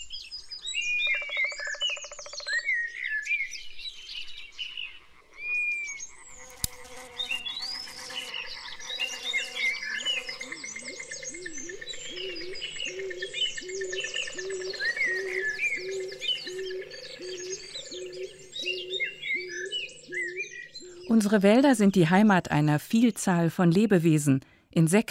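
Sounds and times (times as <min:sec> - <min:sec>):
many birds chirping and trilling in a dense forest: 0:00.0 - 0:24.0
frogs croaking in a dense forest: 0:01.0 - 0:02.7, 0:04.4 - 0:21.8
speech: 0:21.2 - 0:25.0.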